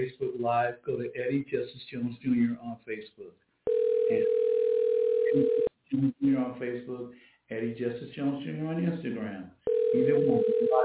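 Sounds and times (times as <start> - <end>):
speech: 0.0 - 3.4, 4.1 - 4.6, 5.3 - 10.8
telephone dial tone while dialing a number: 3.7 - 5.7, 9.7 - 10.8.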